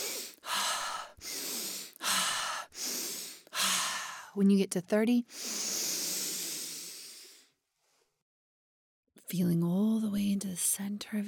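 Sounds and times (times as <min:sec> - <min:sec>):
deep breathing in a guided breathing exercise: 0:00.0 - 0:04.4, 0:05.3 - 0:07.5
speech: 0:04.4 - 0:05.6, 0:09.3 - 0:11.2.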